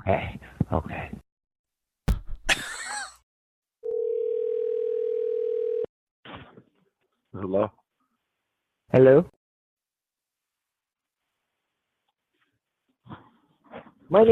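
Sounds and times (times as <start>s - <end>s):
speech: 0.0s - 1.2s, 7.5s - 7.8s, 8.9s - 9.4s
telephone dial tone: 3.8s - 5.9s.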